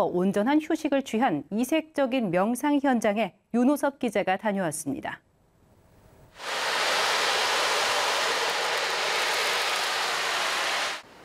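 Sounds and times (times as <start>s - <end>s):
speech: 0.0s - 5.3s
recording played in a temple hall: 6.4s - 11.2s.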